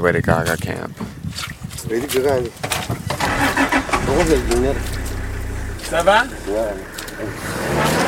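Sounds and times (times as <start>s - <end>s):
speech: 0.0s - 3.0s, 4.1s - 4.9s, 5.9s - 8.0s
car engine revving and idling while stuck in mud on a rain-soaked track in Chad: 3.2s - 8.0s.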